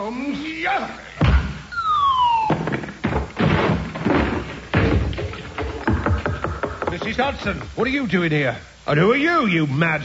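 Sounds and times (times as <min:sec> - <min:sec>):
speech: 0:00.0 - 0:01.2, 0:07.1 - 0:10.0
brief descending siren wail: 0:01.7 - 0:02.6
door battered down with heavy thuds and crashes: 0:02.5 - 0:07.8.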